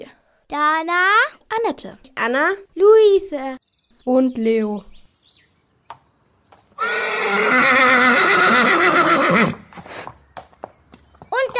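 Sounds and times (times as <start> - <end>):
speech: 0.5 - 4.9
horse neighing: 6.8 - 9.7.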